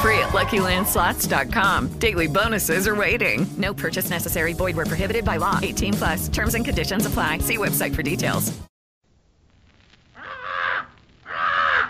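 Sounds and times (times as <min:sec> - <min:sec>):
speech: 0:00.2 - 0:08.7
parrot squawking: 0:10.2 - 0:11.8.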